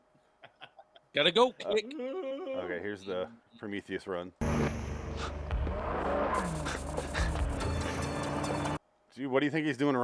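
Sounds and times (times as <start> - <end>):
speech: 1.2 - 7.2, 9.2 - 10.0
Ferrari sports car engine roaring during a chase: 4.4 - 8.8
tire noise: 4.4 - 8.8.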